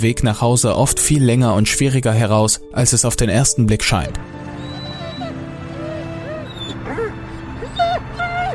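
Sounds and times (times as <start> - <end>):
speech: 0.0 - 4.5
dog whimpering and whining: 4.6 - 8.5.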